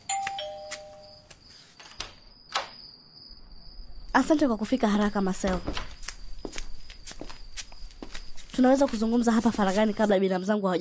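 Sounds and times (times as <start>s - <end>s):
doorbell ringing: 0.0s - 1.2s
speech: 4.2s - 6.0s, 8.6s - 10.8s.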